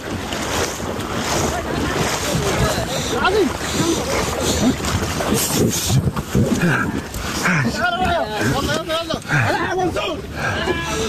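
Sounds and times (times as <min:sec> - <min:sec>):
boat carrying people shoved off into the water: 0:00.0 - 0:09.3
churning surf: 0:00.0 - 0:11.0
water splashing: 0:00.0 - 0:11.0
wind: 0:00.0 - 0:11.0.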